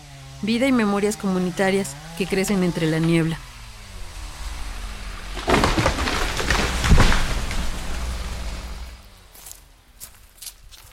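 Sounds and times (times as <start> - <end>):
speech: 0.4 - 3.5
footsteps crunching over dry leaves and brush in a heavily logged forest: 3.6 - 10.9.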